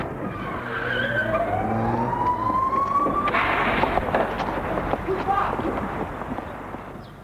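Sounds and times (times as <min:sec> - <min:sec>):
police car siren: 0:00.0 - 0:04.7
rumbling traffic noise: 0:00.0 - 0:07.2
rush of engine and road noise: 0:00.0 - 0:07.2.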